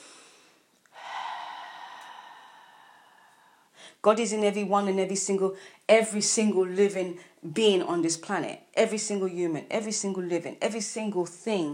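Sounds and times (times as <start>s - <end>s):
deep breath in and out: 0.0s - 4.0s
speech: 4.0s - 11.7s.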